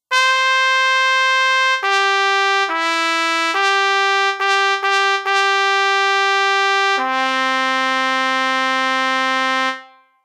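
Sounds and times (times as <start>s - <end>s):
trumpet melody: 0.0s - 10.2s.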